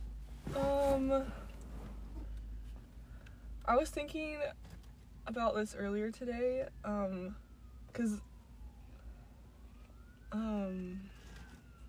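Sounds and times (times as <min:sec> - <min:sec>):
speech: 0:01.0 - 0:01.4, 0:03.7 - 0:08.3, 0:10.3 - 0:11.2
faint distant siren wailing: 0:05.1 - 0:11.8.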